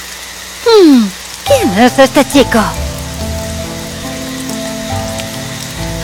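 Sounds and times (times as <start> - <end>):
heavy rain pouring: 0.0 - 6.0
speech: 1.8 - 2.8.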